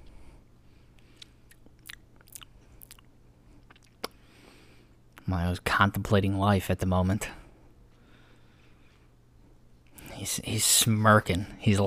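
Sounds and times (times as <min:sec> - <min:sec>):
low steady hum: 0:00.0 - 0:11.8
chewing with moist crunchy bites: 0:01.0 - 0:04.2
speech: 0:05.3 - 0:07.4, 0:10.2 - 0:11.8.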